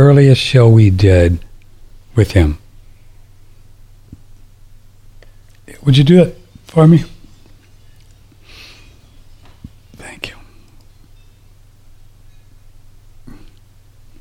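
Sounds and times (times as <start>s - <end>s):
speech: 0.0s - 1.5s, 2.2s - 2.6s, 5.8s - 7.1s
low steady hum: 0.0s - 14.2s
faint breathy whispering noises: 9.7s - 10.8s
soft abrupt hiccups: 13.2s - 13.7s.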